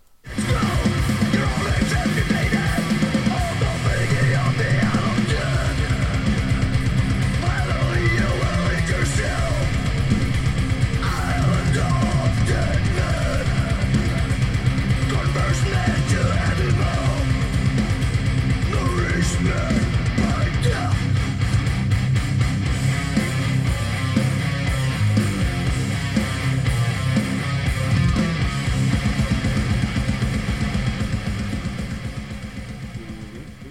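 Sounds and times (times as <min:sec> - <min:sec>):
heavy distorted guitars in a melodic metal song: 0:00.1 - 0:33.6
driving drums in a melodic metal song: 0:00.2 - 0:33.6
sung vocal line in a melodic metal song: 0:00.3 - 0:17.9, 0:18.5 - 0:21.2, 0:32.8 - 0:33.6.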